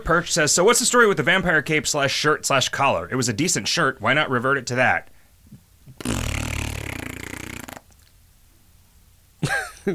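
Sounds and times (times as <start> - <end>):
speech: 0.0 - 5.2
fart noise: 5.9 - 8.0.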